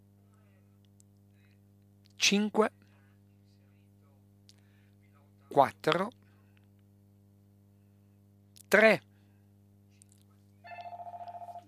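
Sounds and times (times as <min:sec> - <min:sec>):
speech: 0:02.3 - 0:02.8, 0:05.6 - 0:06.2, 0:08.7 - 0:09.1
telephone ringing with rapid electronic pulses: 0:10.7 - 0:11.6.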